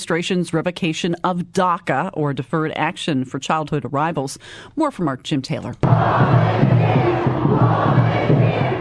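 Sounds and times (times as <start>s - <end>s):
speech: 0.0s - 8.4s
large crowd shouting and chanting outside a courthouse: 5.8s - 8.7s.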